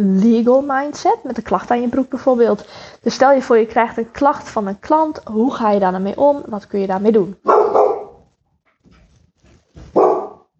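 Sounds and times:
speech: 0:00.0 - 0:07.6
dog barking loudly: 0:07.4 - 0:08.2, 0:09.9 - 0:10.5
dog yelping softly: 0:07.5 - 0:08.2, 0:09.9 - 0:10.4.

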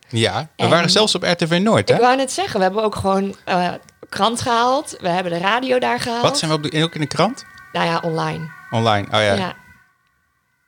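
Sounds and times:
speech: 0:00.1 - 0:09.6
ambulance siren: 0:02.4 - 0:10.6.

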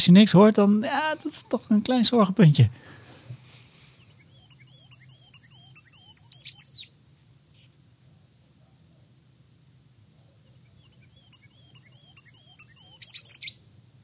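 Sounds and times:
speech: 0:00.0 - 0:03.0
goldcrest song: 0:00.0 - 0:06.9, 0:10.4 - 0:13.6
faint low hum: 0:00.0 - 0:14.0.

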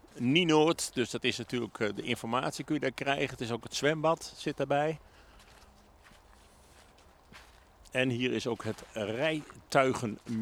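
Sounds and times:
soft scuffing footsteps on hard ground toward an entrance gate: 0:00.0 - 0:02.3, 0:05.2 - 0:10.3
speech: 0:00.2 - 0:05.1, 0:07.9 - 0:10.3.

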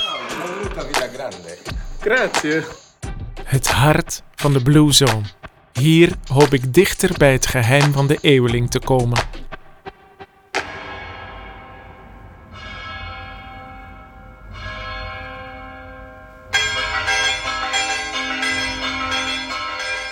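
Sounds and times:
speech: 0:00.4 - 0:02.8, 0:03.5 - 0:09.4
church bells ringing in a mountain village: 0:12.6 - 0:20.1.

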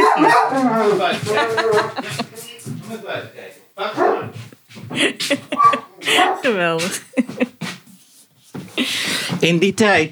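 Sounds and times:
dog barking: 0:00.0 - 0:02.2, 0:03.8 - 0:04.4, 0:05.4 - 0:06.6
speech: 0:00.2 - 0:02.3, 0:04.9 - 0:07.1, 0:08.9 - 0:10.1
person talking and chuckling: 0:00.9 - 0:02.6, 0:04.9 - 0:07.7.

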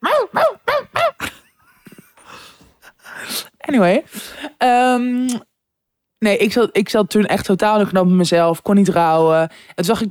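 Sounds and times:
small dog yapping frantically: 0:00.0 - 0:01.2
speech: 0:03.7 - 0:05.5, 0:06.2 - 0:10.0.

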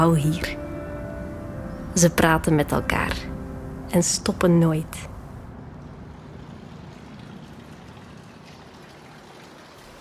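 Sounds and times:
speech: 0:00.0 - 0:00.6, 0:02.0 - 0:03.3, 0:03.9 - 0:05.1
entrance fountain water splashing: 0:05.9 - 0:09.9.

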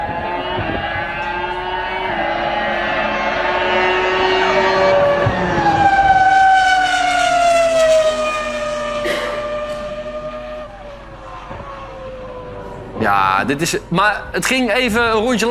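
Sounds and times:
old Renault Formula 1 car engine screaming at high revs on the Paul Ricard circuit: 0:00.0 - 0:13.9
speech: 0:13.4 - 0:15.5.

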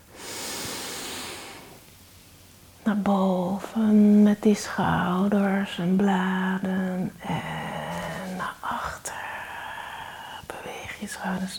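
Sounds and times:
deep inhalation with shoulders raised during a guided relaxation exercise: 0:00.1 - 0:01.8
speech: 0:02.8 - 0:07.7, 0:11.2 - 0:11.5.

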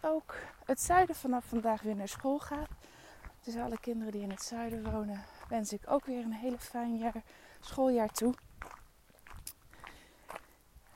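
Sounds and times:
speech: 0:00.0 - 0:08.8
footsteps crunching on a dry outdoor surface: 0:00.1 - 0:10.9.

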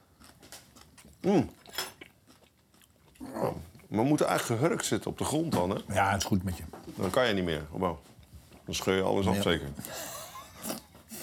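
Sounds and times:
chewing and biting: 0:00.0 - 0:03.9
people eating ramen soup with chopsticks: 0:00.0 - 0:11.2
speech: 0:01.2 - 0:01.6, 0:03.9 - 0:08.1, 0:08.7 - 0:10.1.

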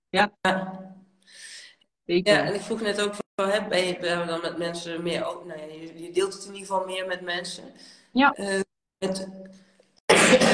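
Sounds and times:
speech: 0:00.1 - 0:01.5, 0:02.1 - 0:09.6
person coughing: 0:10.1 - 0:10.5.

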